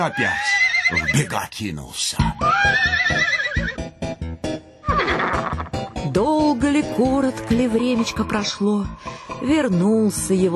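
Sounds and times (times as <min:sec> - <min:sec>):
horse neighing: 0:00.0 - 0:01.4, 0:02.3 - 0:03.8, 0:04.8 - 0:05.8
speech: 0:00.0 - 0:03.8, 0:06.1 - 0:10.5.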